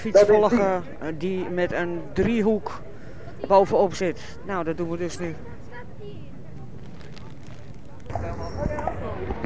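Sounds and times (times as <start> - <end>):
speech: 0.0 - 6.3
outdoor bustle: 0.0 - 9.4
murmuring crowd: 2.7 - 9.4
horse hooves clip-clopping on a paved street: 6.3 - 8.9.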